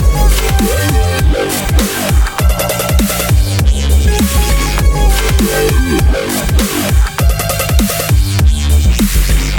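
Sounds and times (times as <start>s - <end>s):
music: 0.0s - 9.5s.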